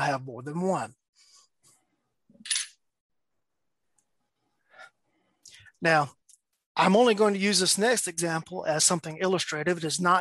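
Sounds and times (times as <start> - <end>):
speech: 0.0 - 1.3, 5.8 - 6.2, 6.8 - 10.2
metal casino coin clinking on a hard surface: 2.4 - 2.8.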